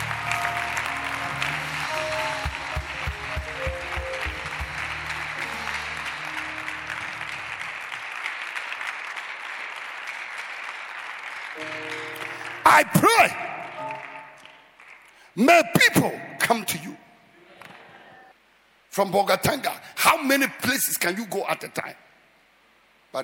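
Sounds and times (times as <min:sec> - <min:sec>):
large audience clapping: 0:00.0 - 0:16.8, 0:17.6 - 0:18.0
speech: 0:12.8 - 0:13.4, 0:15.4 - 0:16.9, 0:19.0 - 0:22.1.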